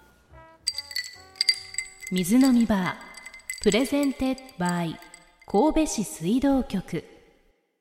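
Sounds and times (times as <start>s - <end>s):
glasses of tap water clinking together in a toast: 0.7s - 5.5s
speech: 2.1s - 3.0s, 3.6s - 7.1s.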